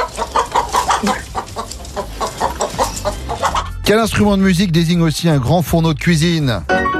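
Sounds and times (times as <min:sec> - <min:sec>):
turkey gobbling: 0:00.0 - 0:03.8
speech: 0:01.0 - 0:01.2, 0:03.9 - 0:06.8.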